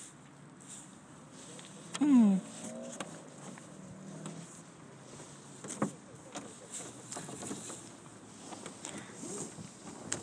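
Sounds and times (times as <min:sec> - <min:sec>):
open-air noise on the water: 0:00.0 - 0:10.2
sail cloth rustling on a sailboat: 0:00.6 - 0:10.2
sailboat rigging rope creaking: 0:02.0 - 0:10.2.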